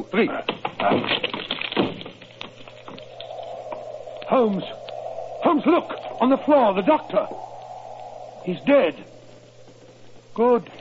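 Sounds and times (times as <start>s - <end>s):
speech: 0.0s - 1.3s, 4.3s - 4.8s, 5.4s - 7.5s, 8.4s - 9.1s, 10.4s - 10.7s
locked door to a room being broken in: 0.5s - 2.2s.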